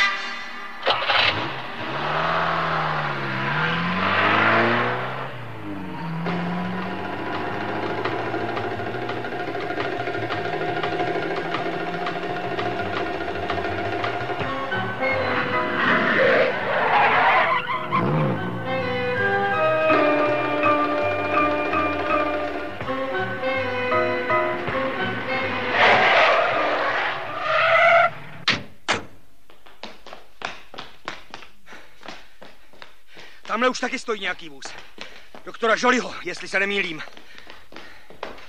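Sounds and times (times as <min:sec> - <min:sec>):
car engine cranking, starting and revving as the car pulls away: 0:00.8 - 0:28.4
speech: 0:33.6 - 0:34.8, 0:35.6 - 0:37.2.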